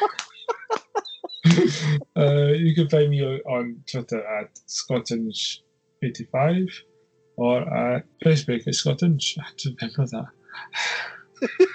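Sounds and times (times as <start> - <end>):
laughter: 0.0 - 6.8, 7.4 - 11.7
person yawning: 1.4 - 5.5
speech: 1.5 - 11.7.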